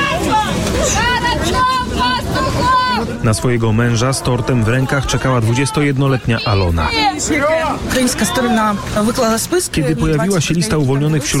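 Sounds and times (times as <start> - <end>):
crowd of relatives shouting joyfully greeting returning soldiers: 0.0 - 9.2
speech: 3.2 - 11.3.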